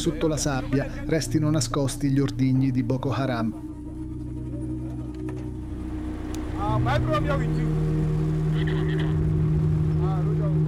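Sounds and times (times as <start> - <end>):
speech: 0.0 - 3.7, 6.8 - 7.8, 8.6 - 9.1
vehicle engine droning and rumbling in road traffic: 3.9 - 10.6.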